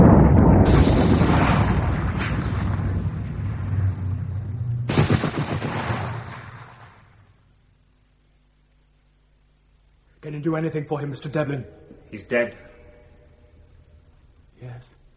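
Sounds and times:
gunfire: 0.0s - 3.8s, 4.8s - 7.3s
grenade explosion: 0.0s - 7.3s
speech: 10.4s - 12.7s.

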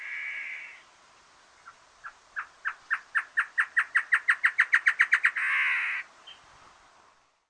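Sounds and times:
great antshrike Taraba major major snarling and calling: 0.0s - 0.8s, 1.6s - 6.4s.

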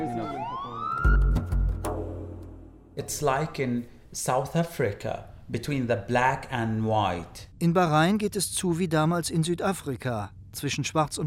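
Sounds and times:
police siren wailing as police advance in Bahrain: 0.0s - 1.7s
speech: 3.0s - 11.2s.

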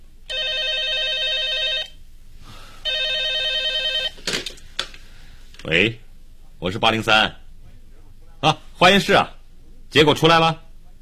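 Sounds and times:
telephone bell ringing in a police office: 0.3s - 2.0s, 2.8s - 4.2s
speech: 5.6s - 6.0s, 6.6s - 7.4s, 8.4s - 10.6s.

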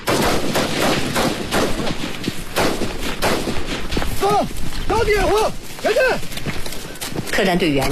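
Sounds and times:
gunfire during a special forces combat exercise in hot humid subtropical terrain: 0.0s - 4.0s
speech: 4.2s - 6.3s, 7.4s - 7.9s.

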